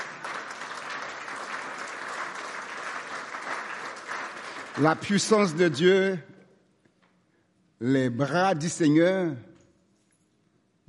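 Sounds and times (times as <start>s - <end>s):
audience applauding: 0.0s - 5.8s
speech: 4.8s - 6.3s, 7.8s - 9.5s.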